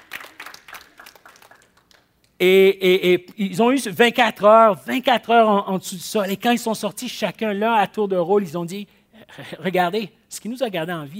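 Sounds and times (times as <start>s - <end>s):
audience applause: 0.0s - 2.1s
speech: 2.4s - 11.1s.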